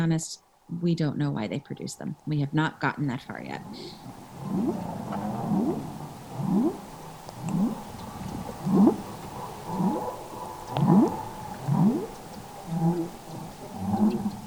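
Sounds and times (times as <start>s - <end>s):
speech: 0.0s - 5.0s
whale pulsed calls for close-range social interaction: 3.9s - 14.4s.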